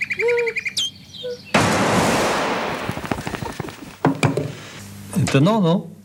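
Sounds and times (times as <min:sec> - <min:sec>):
nightingale singing: 0:00.0 - 0:01.6
rushing burst of noise: 0:01.6 - 0:04.0
crackles and pops: 0:01.6 - 0:04.8
speech: 0:05.3 - 0:05.9.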